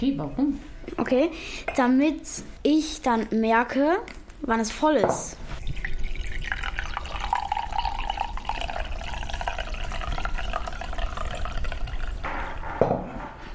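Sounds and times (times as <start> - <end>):
speech: 0.0 - 5.6
warm tea poured into a cup: 5.6 - 12.8.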